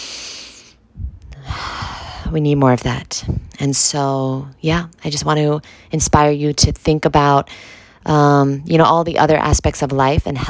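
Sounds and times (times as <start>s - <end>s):
person taking a deep breath in and out: 0.0s - 2.3s
speech: 2.3s - 10.4s.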